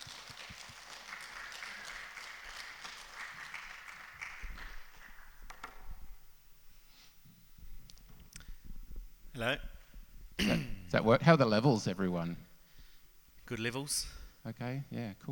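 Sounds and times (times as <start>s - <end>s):
crowd applauding: 0.0s - 6.3s
speech: 9.4s - 9.7s, 10.5s - 12.5s, 13.5s - 15.3s.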